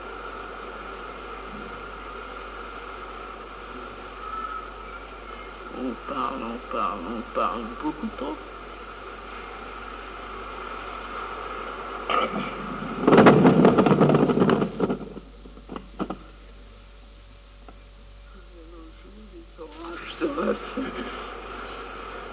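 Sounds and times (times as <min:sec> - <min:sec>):
speech: 0:05.8 - 0:08.5
homemade rattling thunder sound effect: 0:12.1 - 0:15.3.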